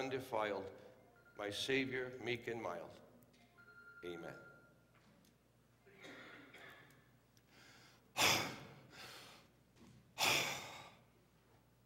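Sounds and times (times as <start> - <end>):
speech: 0.0 - 3.1, 4.0 - 4.5
sharp gasping breaths: 7.4 - 9.6.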